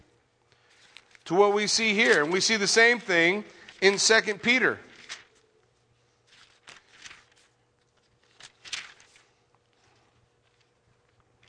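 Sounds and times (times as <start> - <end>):
thin Bible pages being flipped: 0.6 - 2.5, 4.9 - 11.4
speech: 1.3 - 4.9.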